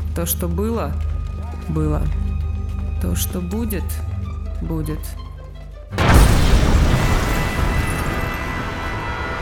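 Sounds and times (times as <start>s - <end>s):
speech: 0.2s - 2.3s, 3.0s - 5.2s
explosion: 6.0s - 9.3s.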